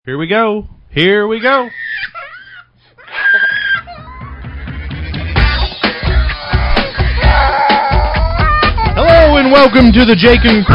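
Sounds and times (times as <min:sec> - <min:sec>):
speech: 0:00.0 - 0:02.2, 0:09.5 - 0:10.7
person screaming and wailing loudly: 0:01.4 - 0:04.8, 0:05.9 - 0:09.3
thumping rhythmic backing: 0:03.9 - 0:10.7.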